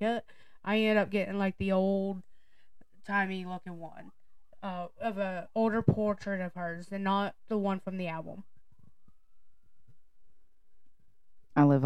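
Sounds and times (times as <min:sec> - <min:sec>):
speech: 0:00.0 - 0:02.3, 0:03.0 - 0:08.5, 0:11.6 - 0:11.8
faint police siren passing outside: 0:03.2 - 0:10.3.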